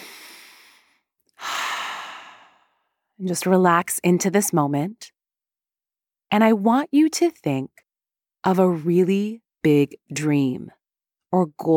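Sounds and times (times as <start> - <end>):
deep breath in and out during a relaxation exercise: 0.0 - 3.0
speech: 3.2 - 5.1, 6.3 - 7.8, 8.4 - 11.7.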